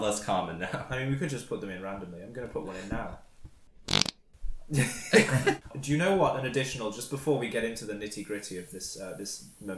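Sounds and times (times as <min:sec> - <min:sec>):
speech: 0:00.0 - 0:03.3, 0:04.7 - 0:09.7
comic fart sound effect: 0:03.9 - 0:04.2.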